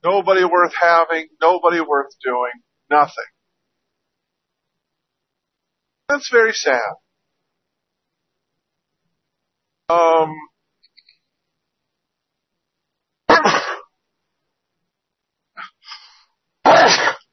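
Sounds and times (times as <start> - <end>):
speech: 0.0 - 3.3, 6.1 - 7.0, 9.9 - 10.5
person sneezing: 13.3 - 13.9, 15.6 - 17.3.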